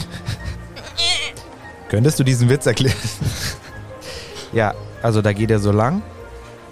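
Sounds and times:
laughter: 0:00.0 - 0:01.3, 0:02.7 - 0:03.8
murmuring: 0:00.0 - 0:01.5
person imitating goat bleating: 0:00.8 - 0:01.4
speech: 0:01.9 - 0:03.6, 0:04.5 - 0:06.1.

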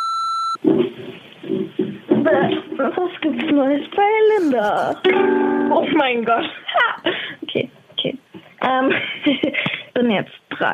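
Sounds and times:
answering machine beep after a recorded greeting: 0:00.0 - 0:00.6
speech: 0:00.6 - 0:07.3, 0:08.6 - 0:10.7.

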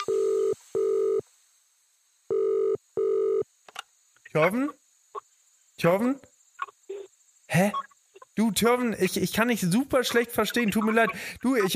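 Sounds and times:
telephone ringing tone of buzzy beeps: 0:00.0 - 0:01.2, 0:02.3 - 0:03.4
speech: 0:04.4 - 0:04.8, 0:05.8 - 0:06.3, 0:07.5 - 0:11.7.

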